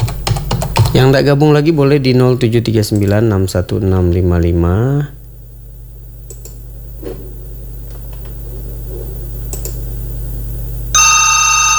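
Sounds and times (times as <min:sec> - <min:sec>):
keyboard clicks: 0:00.0 - 0:01.0, 0:06.3 - 0:06.6, 0:09.5 - 0:09.8
speech: 0:00.9 - 0:05.2
telephone ringing in a radio studio: 0:10.9 - 0:11.7.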